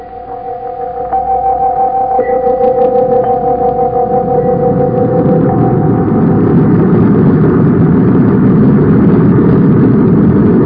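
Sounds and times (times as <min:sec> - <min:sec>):
spaceship rocket engines blasting off: 0:00.0 - 0:10.6.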